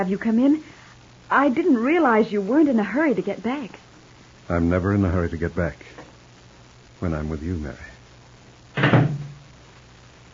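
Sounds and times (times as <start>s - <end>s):
speech: 0.0s - 3.8s, 4.5s - 6.0s, 7.0s - 7.9s
front door shutting with a solid thud: 8.8s - 9.5s.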